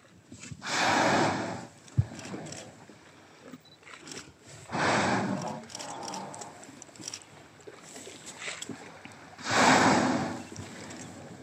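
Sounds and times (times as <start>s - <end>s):
water noise: 0.0s - 11.4s
whales exhaling through blowholes at surface: 0.6s - 1.7s, 4.7s - 6.4s, 9.4s - 10.6s.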